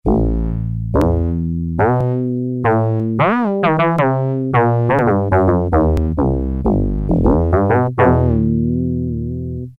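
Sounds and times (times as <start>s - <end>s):
Yamaha TX81Z synth bass: 0.0s - 9.7s.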